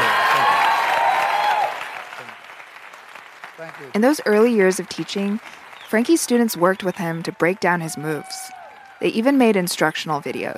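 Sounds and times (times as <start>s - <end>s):
crowd applauding: 0.0s - 10.5s
speech: 3.7s - 10.5s.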